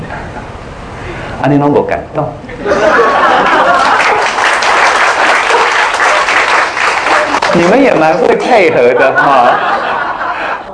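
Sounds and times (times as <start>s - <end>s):
speech: 1.4s - 3.1s, 7.6s - 9.8s
laughter: 2.5s - 7.6s, 8.2s - 10.7s
audience clapping: 3.1s - 8.2s.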